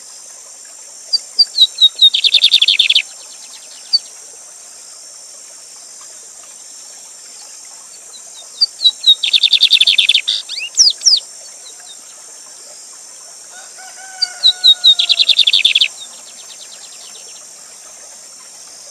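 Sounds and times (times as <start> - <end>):
waterfall rushing water hiss: 0.0 - 18.9
lined seedeater singing descending whistles and buzzy trill: 1.4 - 3.0, 8.6 - 11.2, 14.4 - 15.9.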